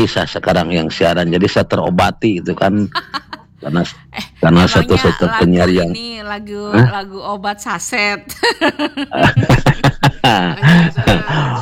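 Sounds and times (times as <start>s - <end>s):
speech: 0.0s - 11.6s
laughter: 2.8s - 5.9s, 8.3s - 11.6s
radio broadcaster clearing throat and coughing: 9.1s - 11.6s.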